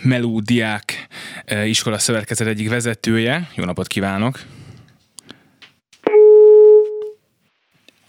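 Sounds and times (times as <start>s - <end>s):
speech: 0.0s - 4.6s
telephone busy tone after call dropped: 6.1s - 7.2s.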